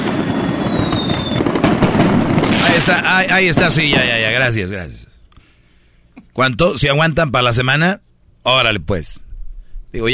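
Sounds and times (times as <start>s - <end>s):
fireworks crackling and popping outdoors: 0.0s - 4.6s
speech: 2.9s - 5.1s, 6.4s - 9.2s, 9.9s - 10.1s.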